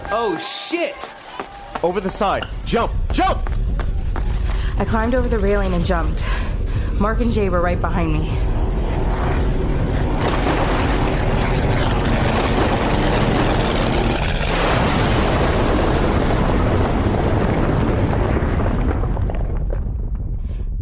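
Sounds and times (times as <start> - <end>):
speech: 0.1 - 1.1, 1.8 - 3.6, 4.8 - 6.4, 7.0 - 8.5
heavy rumbling: 1.2 - 20.8
massive roaring explosion of a bridge being destroyed: 8.4 - 20.8
crashing debris from a destroyed bridge: 10.2 - 20.4.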